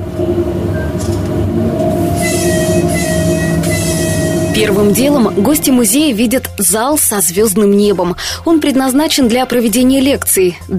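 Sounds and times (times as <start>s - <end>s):
train wheels squealing against the rails: 0.0s - 6.5s
train arriving on railway with rattling carriages: 0.0s - 8.4s
speech: 4.6s - 10.7s.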